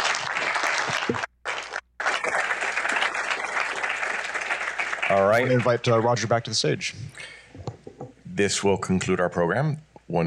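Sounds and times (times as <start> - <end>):
audience applauding for panelists: 0.0 - 6.5
speech: 5.4 - 7.4, 8.4 - 10.2.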